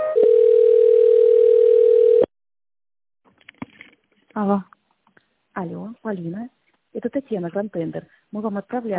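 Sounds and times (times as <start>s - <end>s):
telephone tones during call transfer: 0.2s - 2.3s
speech: 4.4s - 4.7s, 5.6s - 8.9s.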